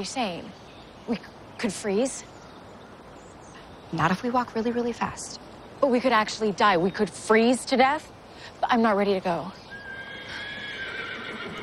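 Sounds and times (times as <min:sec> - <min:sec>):
speech: 0:00.0 - 0:02.3, 0:03.9 - 0:09.7
horse with a rider neighing in the distance on a freezing day: 0:09.7 - 0:11.6.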